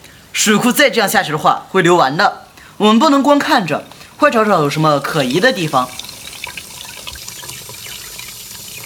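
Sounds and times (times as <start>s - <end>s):
speech: 0.4s - 6.0s
water running from open faucet: 3.2s - 8.8s.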